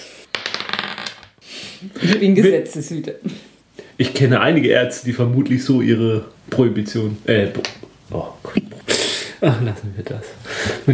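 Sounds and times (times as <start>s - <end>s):
die clattering across a hard tabletop: 0.3s - 1.3s
speech: 1.8s - 8.8s, 9.4s - 10.9s.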